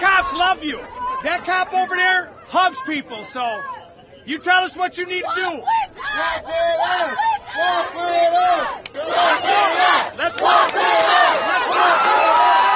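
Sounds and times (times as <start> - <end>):
crowd shouting: 0.0 - 12.7
speech: 0.2 - 12.6
large protest crowd chanting in unison: 5.7 - 12.7.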